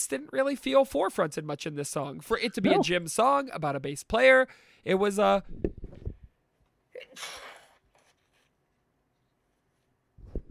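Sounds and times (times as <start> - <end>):
speech: 0.0 - 5.8, 7.1 - 7.4
person sneezing: 6.9 - 7.8.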